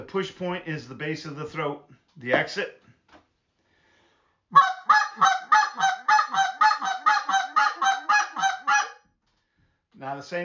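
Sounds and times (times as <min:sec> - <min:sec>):
speech: 0:00.1 - 0:02.8, 0:10.0 - 0:10.4
goose call honking, imitating a goose: 0:04.6 - 0:09.0.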